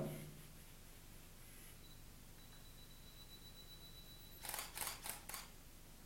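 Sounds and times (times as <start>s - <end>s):
quiet hiss: 0.0s - 6.0s
DSLR camera shutter firing during automatic exposure bracketing: 4.4s - 5.5s.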